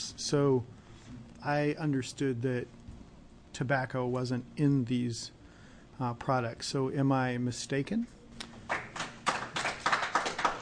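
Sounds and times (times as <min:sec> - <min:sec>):
speech: 0:00.2 - 0:00.8, 0:01.4 - 0:02.8, 0:03.6 - 0:05.4, 0:06.0 - 0:08.2
people clapping in a senate committee hearing room: 0:08.4 - 0:10.6.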